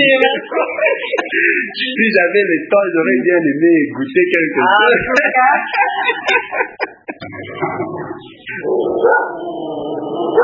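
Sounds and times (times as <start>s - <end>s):
laughter: 0.0s - 2.2s, 4.8s - 8.6s
speech: 0.0s - 10.4s
family guard dog barking and whining: 7.5s - 10.4s.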